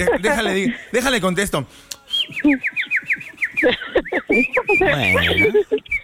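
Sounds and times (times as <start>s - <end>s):
laughter: 0.0s - 1.2s, 2.2s - 6.0s
speech: 0.0s - 6.0s
bird chirping: 1.2s - 6.0s.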